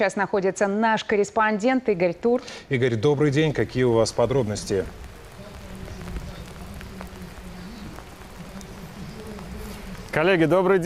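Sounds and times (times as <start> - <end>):
speech: 0.0 - 5.1, 10.2 - 10.8
heavy rain pouring down outdoors: 1.9 - 10.8
low droning hum: 3.6 - 10.7.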